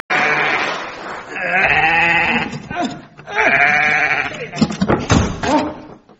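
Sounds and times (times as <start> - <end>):
sheep bleating loudly: 0.1 - 0.8, 1.4 - 2.6, 3.3 - 4.5
brief thump: 4.8 - 5.6.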